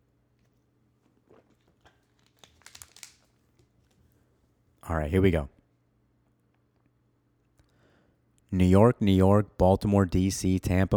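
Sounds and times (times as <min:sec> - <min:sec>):
plastic water bottle crinkling: 0:00.4 - 0:04.1
speech: 0:04.9 - 0:05.6, 0:08.6 - 0:10.9.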